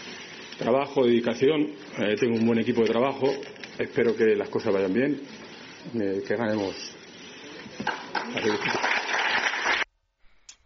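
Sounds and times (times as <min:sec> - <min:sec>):
speech: 0:00.6 - 0:07.0, 0:07.8 - 0:08.9
audience applause: 0:07.8 - 0:09.9.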